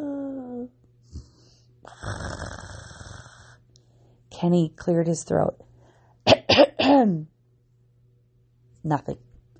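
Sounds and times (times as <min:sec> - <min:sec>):
voice imitating a purring snore: 0:01.9 - 0:03.6
speech: 0:04.4 - 0:05.7, 0:07.0 - 0:07.3, 0:08.8 - 0:09.3.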